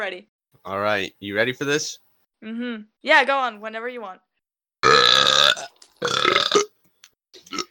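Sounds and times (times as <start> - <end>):
speech: 0.0 - 4.3
two people burping loudly and deliberately: 4.8 - 6.7.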